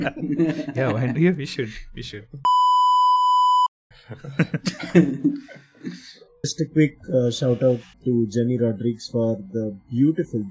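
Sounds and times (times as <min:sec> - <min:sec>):
laughter: 0:00.0 - 0:01.4, 0:04.0 - 0:06.2
speech: 0:00.0 - 0:02.6, 0:04.0 - 0:10.5
censor bleep bleeping out a spoken word: 0:02.5 - 0:03.7.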